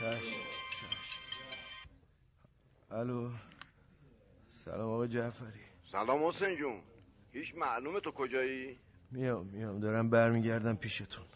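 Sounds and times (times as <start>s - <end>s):
mobile phone ringing: 0.0s - 1.9s
speech: 2.9s - 3.5s, 4.6s - 11.3s.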